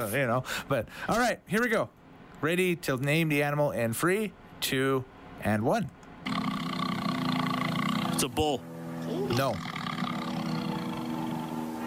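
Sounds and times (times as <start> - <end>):
speech: 0.0 - 6.4, 8.2 - 8.7, 9.3 - 9.7
tiger roaring in a rumbling growl: 6.2 - 11.8.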